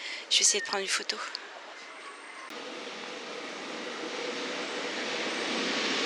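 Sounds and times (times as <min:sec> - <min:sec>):
speech: 0:00.3 - 0:01.4
double-decker RER A commuter train pulling in to the platform: 0:02.1 - 0:06.0.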